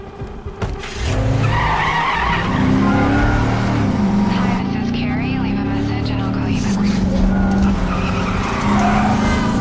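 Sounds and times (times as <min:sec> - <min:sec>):
pickup truck engine roaring while racing through traffic: 0:00.0 - 0:09.5
pickup truck tires squealing in a long skid: 0:00.8 - 0:04.6, 0:07.0 - 0:09.5.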